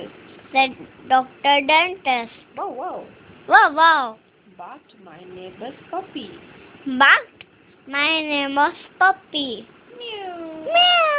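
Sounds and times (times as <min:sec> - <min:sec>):
speech: 0:00.5 - 0:11.1
child's voice imitating a cat meowing: 0:09.9 - 0:11.1.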